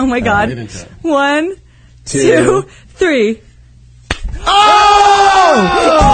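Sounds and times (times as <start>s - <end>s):
speech: 0.0s - 3.5s, 4.4s - 6.1s
hand slapping across the face: 4.0s - 4.4s
person crying out in pain: 4.5s - 6.1s.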